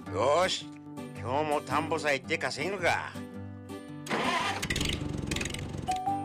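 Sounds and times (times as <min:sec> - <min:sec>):
speech: 0:00.2 - 0:03.2
tractor engine cranking and failing to start: 0:04.1 - 0:06.1.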